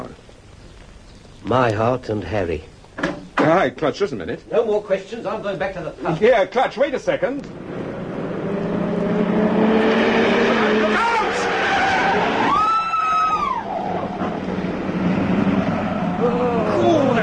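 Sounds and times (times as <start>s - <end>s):
speech: 1.4s - 2.7s, 3.4s - 7.6s
car engine roaring and revving: 7.4s - 17.2s
tyres screeching as car swings through a turn: 10.4s - 17.2s.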